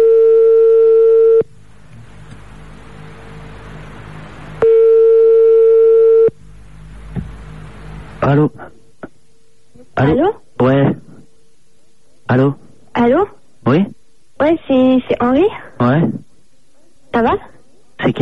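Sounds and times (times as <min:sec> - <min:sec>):
telephone ringing tone of a call being dialed: 0:00.0 - 0:01.5, 0:04.6 - 0:06.4
faint telephone line hiss: 0:01.0 - 0:18.1
speech: 0:08.3 - 0:08.7, 0:10.0 - 0:11.0, 0:12.3 - 0:16.2, 0:17.2 - 0:18.1.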